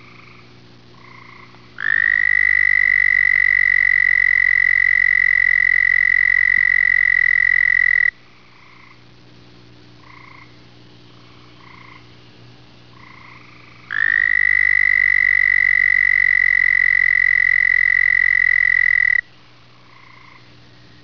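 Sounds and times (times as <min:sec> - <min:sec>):
B. americanus frogs calling: 0:01.0 - 0:09.0, 0:11.6 - 0:12.1, 0:12.9 - 0:19.2, 0:19.9 - 0:20.4.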